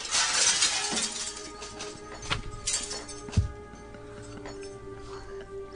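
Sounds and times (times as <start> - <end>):
window glass shattering: 0.0 - 3.5
falling glass shards clinking: 0.0 - 4.8.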